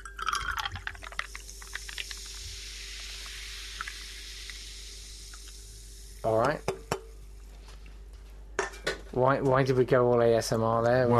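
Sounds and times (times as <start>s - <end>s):
liquid poured into a glass to top up a drink: 0.0s - 6.9s
speech: 6.2s - 6.7s, 9.1s - 11.1s.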